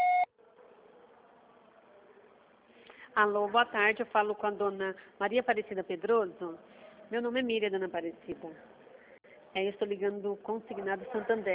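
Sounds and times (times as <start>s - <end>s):
high-pitched electronic voicemail beep: 0.0s - 0.3s
faint low continuous noise: 0.0s - 11.5s
speech: 3.2s - 8.7s, 9.5s - 11.5s.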